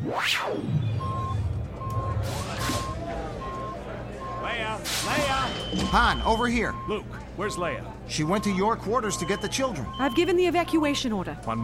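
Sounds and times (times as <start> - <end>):
speech: 0.1 - 0.9, 4.8 - 11.6
alarm beeping: 0.4 - 10.9
loud low rumble: 0.6 - 4.2.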